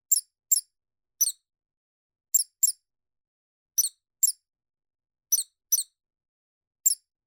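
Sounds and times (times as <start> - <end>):
mouse squeaking: 0.1 - 1.4, 2.3 - 2.8, 3.8 - 4.4, 5.3 - 6.0, 6.8 - 7.1.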